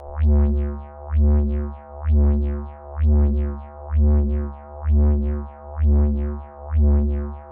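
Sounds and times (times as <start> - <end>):
didgeridoo-like bass: 0.0 - 7.4.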